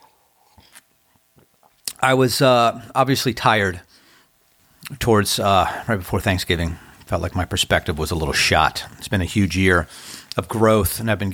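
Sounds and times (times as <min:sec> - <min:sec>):
speech: 0:02.0 - 0:03.9, 0:04.9 - 0:11.3
sipping coffee: 0:04.8 - 0:10.4.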